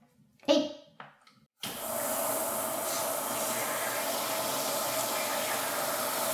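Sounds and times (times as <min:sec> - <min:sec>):
shower spray pouring hot water into a container: 0:01.6 - 0:06.3.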